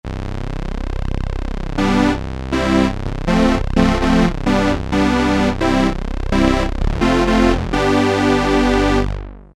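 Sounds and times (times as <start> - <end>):
synth brass: 0.1 - 9.5.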